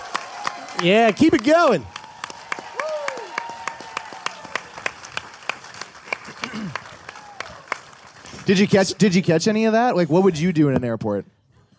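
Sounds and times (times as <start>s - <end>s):
audience whooping and cheering: 0.0s - 5.3s, 6.3s - 7.9s
audience clapping: 0.0s - 9.4s
speech: 0.8s - 1.9s, 8.5s - 11.4s.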